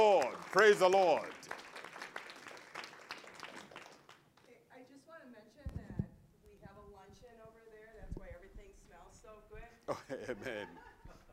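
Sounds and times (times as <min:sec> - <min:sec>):
speech: 0:00.0 - 0:01.6, 0:09.9 - 0:10.8
audience applauding: 0:00.0 - 0:04.2
laughter: 0:09.9 - 0:11.3.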